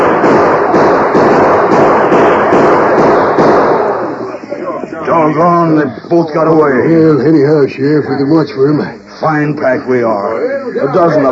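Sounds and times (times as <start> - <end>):
rapid gunfire in a radio western shootout: 0.0 - 4.2
speech: 5.2 - 11.3.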